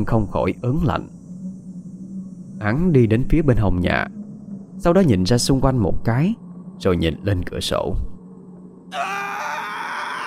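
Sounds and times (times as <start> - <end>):
speech: 0.0 - 1.2, 2.6 - 4.2, 4.8 - 8.1, 8.9 - 9.1
man screaming in terror at night beside a house: 8.9 - 10.2.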